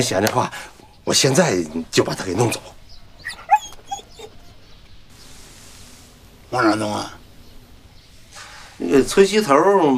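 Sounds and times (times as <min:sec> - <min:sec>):
speech: 0:00.0 - 0:02.8, 0:06.5 - 0:07.2, 0:08.8 - 0:09.9
small puppy whimpering and yipping: 0:03.2 - 0:04.5.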